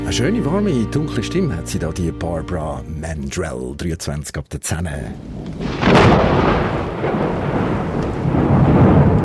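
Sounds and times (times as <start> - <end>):
speech: 0.1 - 6.5
loud thunderclap: 5.1 - 9.2.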